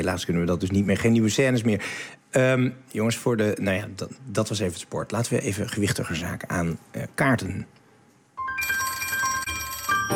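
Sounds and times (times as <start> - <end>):
speech: 0.0 - 7.8
telephone ringing with a sustained electronic ring: 8.4 - 10.1.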